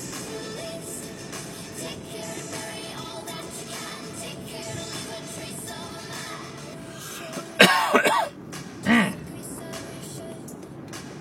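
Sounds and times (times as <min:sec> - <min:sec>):
raspy coughs: 0:07.5 - 0:09.2
throaty clearing sound: 0:07.6 - 0:09.2.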